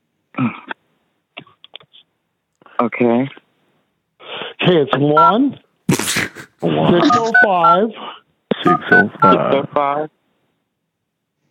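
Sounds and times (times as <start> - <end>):
speech: 0.4 - 0.7, 2.8 - 3.4, 4.7 - 8.1, 8.9 - 10.2
telephone keypad beeps: 5.2 - 5.4, 7.0 - 7.8, 8.7 - 9.4.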